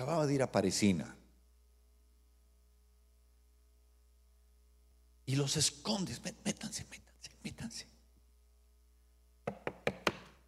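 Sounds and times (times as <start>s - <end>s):
speech: 0.0s - 1.2s, 5.3s - 7.9s
knocking on a door: 9.5s - 10.3s.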